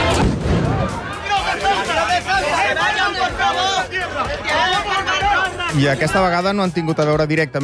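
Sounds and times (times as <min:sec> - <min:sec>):
police firing shots into the air: 0:00.0 - 0:01.0
agitated crowd of protesters in Ceuta shouting and chattering: 0:00.0 - 0:07.6
speech: 0:05.8 - 0:07.6.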